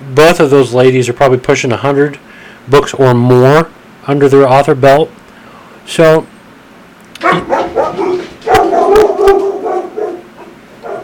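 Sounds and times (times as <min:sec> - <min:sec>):
speech: 0:00.2 - 0:05.2, 0:05.8 - 0:06.3, 0:07.2 - 0:07.6
dogs barking and yipping behind a closed door: 0:07.2 - 0:11.0.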